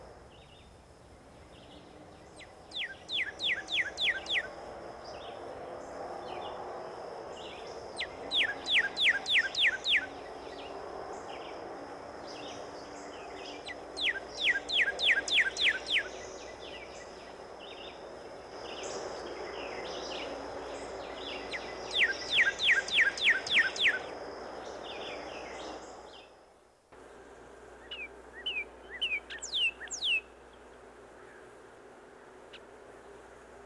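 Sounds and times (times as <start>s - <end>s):
northern cardinal singing: 2.4s - 4.5s, 8.0s - 10.2s, 13.6s - 17.0s, 21.2s - 24.1s, 27.8s - 30.4s.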